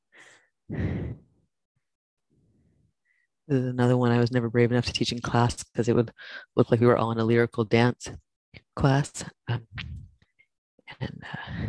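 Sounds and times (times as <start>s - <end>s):
slow deep breath while holding a twisting stretch: 0.1s - 1.4s, 11.4s - 11.6s
speech: 3.5s - 8.2s, 8.8s - 10.0s, 11.0s - 11.6s.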